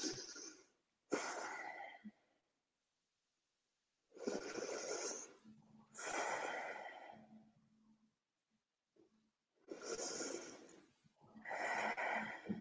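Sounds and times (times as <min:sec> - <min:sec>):
slow paced breathing as a breathing exercise: 0:00.0 - 0:02.4, 0:04.1 - 0:07.6, 0:09.6 - 0:12.5.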